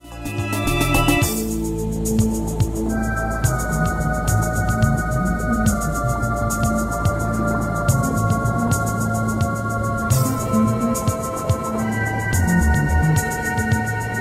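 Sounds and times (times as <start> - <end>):
theme music: 0.0 - 14.2.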